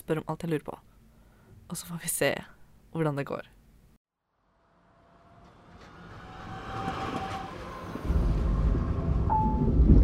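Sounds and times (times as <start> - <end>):
speech: 0.1 - 0.9, 1.7 - 3.6
brief sharp whine of an arriving train: 4.3 - 9.8
thin high squeal of an arriving train: 4.4 - 9.8
train arriving at Oslo Central Station: 4.8 - 10.0.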